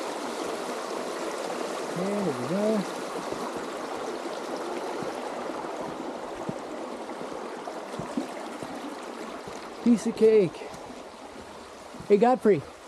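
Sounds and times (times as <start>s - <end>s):
small splashes and gurgles of stream water: 0.0s - 12.8s
stream flowing after rain: 0.0s - 12.8s
speech: 2.0s - 3.5s, 9.9s - 10.7s, 12.1s - 12.8s.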